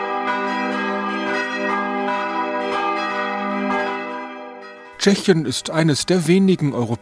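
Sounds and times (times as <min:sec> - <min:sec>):
hand-rung church bells pealing: 0:00.0 - 0:07.0
speech: 0:05.0 - 0:07.0.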